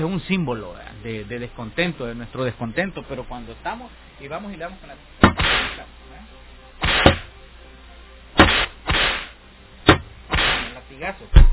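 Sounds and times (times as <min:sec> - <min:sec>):
speech: 0:00.0 - 0:05.8, 0:11.0 - 0:11.5
whip cracking: 0:05.3 - 0:05.8, 0:06.8 - 0:07.3, 0:08.4 - 0:09.3, 0:09.9 - 0:10.8.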